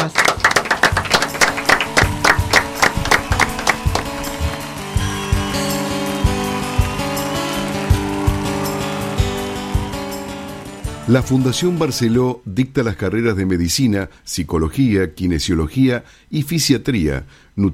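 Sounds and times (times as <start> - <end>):
applause ending a program: 0.0 - 11.8
sustained music with a steady beat: 0.0 - 12.0
speech: 11.1 - 17.7.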